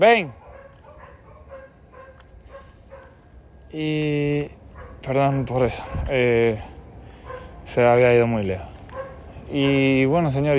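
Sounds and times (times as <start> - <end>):
speech: 0.0 - 0.4, 3.7 - 6.7, 7.7 - 8.7, 9.5 - 10.5
dog barking: 0.2 - 3.3, 4.7 - 6.1, 7.2 - 7.7, 8.9 - 10.0.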